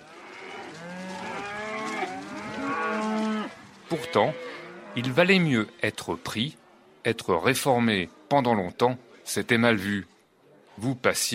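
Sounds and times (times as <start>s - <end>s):
cow mooing in drawn-out wavering calls: 0.0s - 5.5s
speech: 3.9s - 10.1s, 10.8s - 11.3s.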